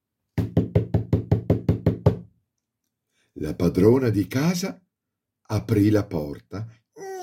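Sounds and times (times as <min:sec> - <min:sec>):
quick knocks on a door with a hollow wooden thud: 0:00.4 - 0:02.3
speech: 0:03.4 - 0:04.8, 0:05.5 - 0:06.8.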